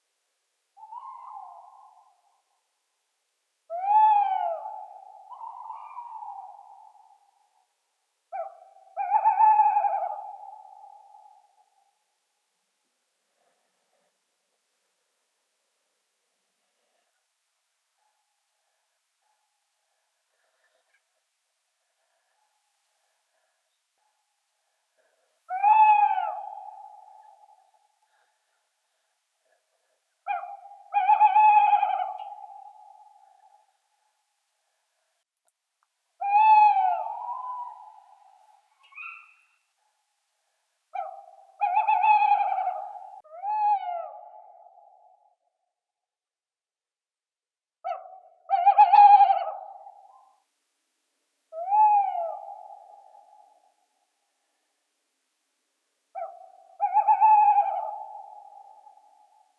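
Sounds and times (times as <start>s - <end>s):
owl: 0.8s - 2.2s, 3.7s - 7.4s, 8.3s - 11.7s, 25.0s - 28.3s, 30.2s - 33.6s, 36.2s - 39.9s, 40.9s - 45.3s, 47.8s - 50.4s, 51.5s - 53.8s, 56.1s - 59.5s.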